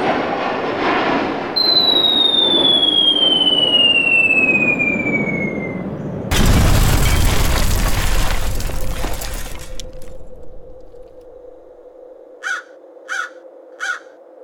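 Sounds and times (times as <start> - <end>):
low hum: 0.1 - 12.3
falling bomb whistle: 1.5 - 6.0
bomb explosion on a target bunker: 6.3 - 11.7
crow cawing: 12.4 - 14.2.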